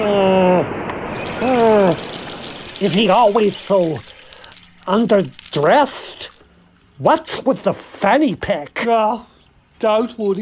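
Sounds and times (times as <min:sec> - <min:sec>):
sea waves: 0:01.0 - 0:06.5
speech: 0:02.8 - 0:04.1, 0:04.8 - 0:06.1, 0:07.0 - 0:10.3.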